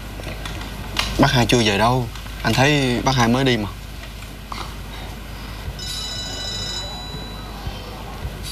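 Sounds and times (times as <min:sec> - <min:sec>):
speech: 0:01.2 - 0:03.8
faint murmuring: 0:04.4 - 0:08.5
telephone ringing with a high electronic trill: 0:05.8 - 0:08.1.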